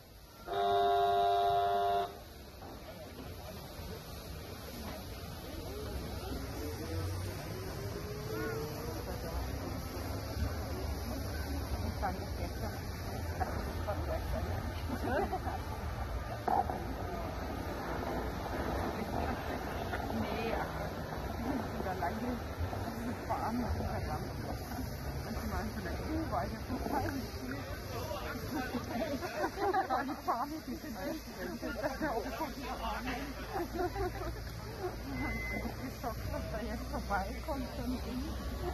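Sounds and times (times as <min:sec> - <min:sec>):
steam locomotive 35 slowly reversing: 0:00.0 - 0:38.7
laughter: 0:03.6 - 0:19.5, 0:22.9 - 0:38.7
steam locomotive whistle blast: 0:35.1 - 0:35.9.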